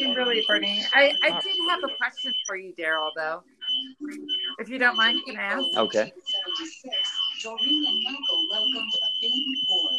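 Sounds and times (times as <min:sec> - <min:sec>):
steady high-pitched electronic beeping tone: 0:00.0 - 0:09.9
speech: 0:00.2 - 0:09.9.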